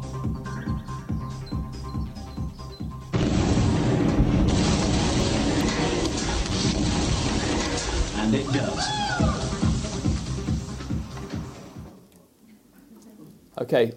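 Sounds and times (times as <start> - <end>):
soft rhythmic thumping: 0.0 - 3.2, 9.2 - 12.0
hydrogen explosion from cesium reacting with water: 3.1 - 8.4
roaring wash of crackling noise: 3.1 - 12.0
speech: 8.5 - 9.0, 13.6 - 13.9.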